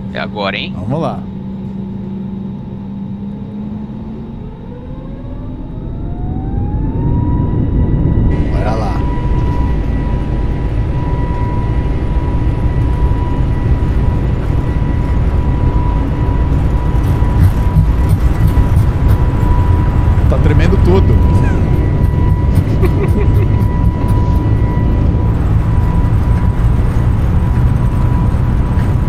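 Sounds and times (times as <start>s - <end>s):
jet engine whine and roar during airplane takeoff heard inside cabin: 0.0s - 29.0s
speech: 0.1s - 1.3s
laughter: 22.4s - 24.4s.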